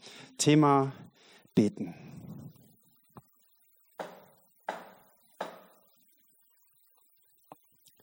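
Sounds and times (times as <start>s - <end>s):
speech: 0.4s - 1.0s, 1.6s - 2.1s
hand knocking on wooden door: 4.0s - 5.8s.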